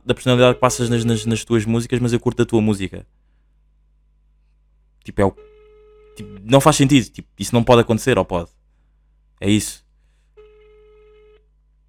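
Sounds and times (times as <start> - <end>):
speech: 0.1 - 3.2, 5.0 - 5.5, 6.2 - 8.6, 9.4 - 9.8
outgoing phone call ringback tone ringing unanswered: 5.4 - 6.8, 10.4 - 11.4.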